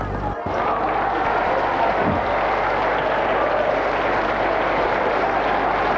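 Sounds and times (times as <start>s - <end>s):
journalists and group members applauding leaving a press conference: 0.0s - 5.9s
murmuring voices: 0.0s - 5.9s.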